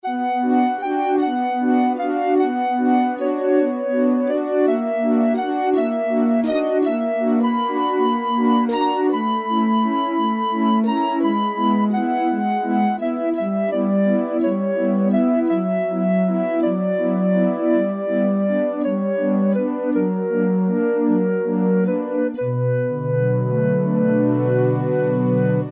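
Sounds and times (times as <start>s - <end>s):
synthesizer string flute sound from internal factory combi: 0.0s - 25.7s.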